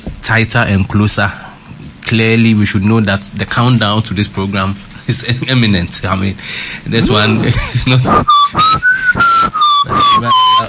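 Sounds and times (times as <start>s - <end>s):
speech: 0.0s - 1.5s, 2.1s - 10.6s
person whistling in a room: 8.1s - 10.6s.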